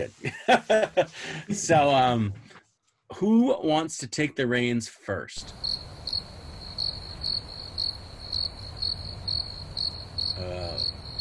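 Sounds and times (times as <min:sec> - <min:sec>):
laughter: 0:00.0 - 0:01.7
speech: 0:00.0 - 0:02.4, 0:03.1 - 0:05.9
crickets chirping in short bright pulses: 0:05.4 - 0:11.2.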